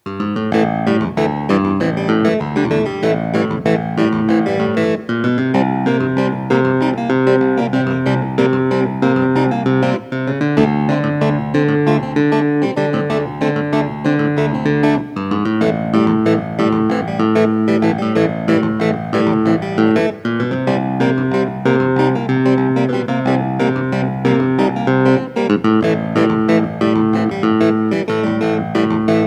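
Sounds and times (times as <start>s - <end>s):
Hohner Clavinet D6 medium: 0.0s - 29.2s.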